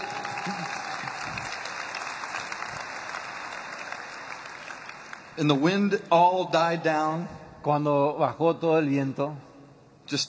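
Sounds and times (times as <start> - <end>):
audience cheering: 0.0 - 4.6
audience applause: 0.0 - 5.4
speech: 5.4 - 9.5, 10.1 - 10.2.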